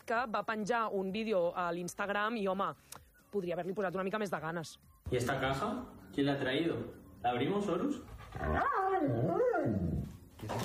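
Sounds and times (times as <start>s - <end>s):
speech: 0.1s - 10.6s
dog whine-growl: 8.3s - 10.2s.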